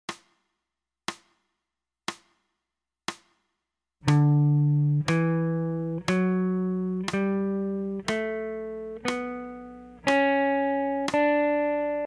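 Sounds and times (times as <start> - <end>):
ascending D major notes: 4.1 - 12.0.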